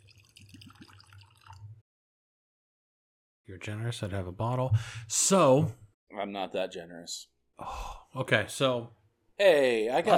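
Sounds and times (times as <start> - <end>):
whiskey pouring into a glass: 0.0 - 1.8
speech: 3.5 - 10.1.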